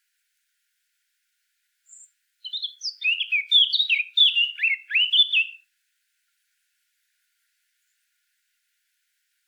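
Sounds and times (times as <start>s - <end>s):
Eurasian blackcap Sylvia atricapilla singing: 1.9s - 5.6s.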